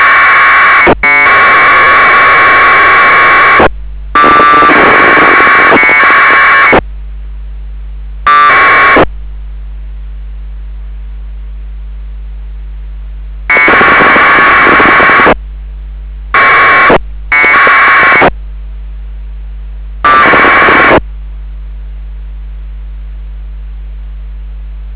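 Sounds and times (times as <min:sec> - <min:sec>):
packet radio signals: 0:00.0 - 0:06.8, 0:08.3 - 0:09.1, 0:13.5 - 0:15.4, 0:16.3 - 0:18.4, 0:20.0 - 0:21.0.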